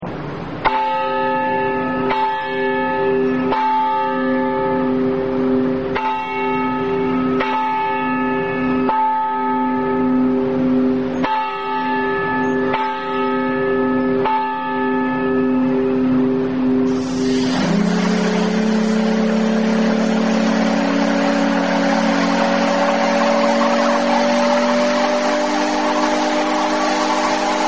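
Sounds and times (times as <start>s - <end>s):
steamboat bell: 0.6s - 27.6s
steamboat whistle: 16.9s - 27.6s.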